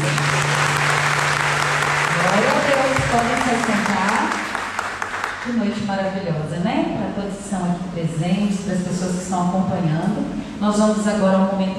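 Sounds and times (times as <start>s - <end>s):
sustained crowd applause: 0.0s - 5.6s
speech: 3.2s - 4.3s, 5.5s - 11.7s.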